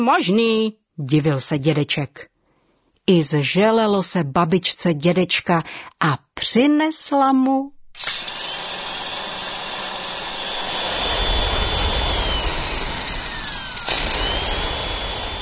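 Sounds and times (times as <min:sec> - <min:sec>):
speech: 0:00.0 - 0:02.3, 0:03.1 - 0:08.4
electric kitchen blender whirring with a high motor whine: 0:08.0 - 0:15.4.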